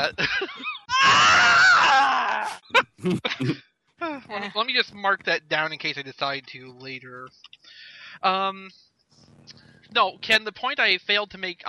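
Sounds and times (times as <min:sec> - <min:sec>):
laughter: 0:00.0 - 0:00.9, 0:02.7 - 0:03.6
speech: 0:00.0 - 0:08.9, 0:09.5 - 0:11.6
person screaming: 0:00.9 - 0:02.6.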